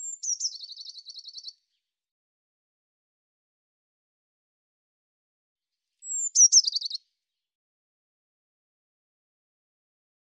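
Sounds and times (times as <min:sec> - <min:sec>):
Eurasian blue tit calling: 0:00.0 - 0:01.5, 0:06.0 - 0:07.0.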